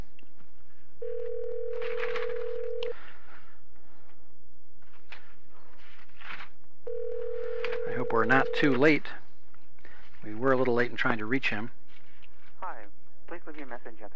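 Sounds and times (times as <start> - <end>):
telephone dial tone: 1.0 - 3.0, 6.9 - 8.8
speech: 8.1 - 9.2, 10.2 - 11.8, 13.6 - 14.1.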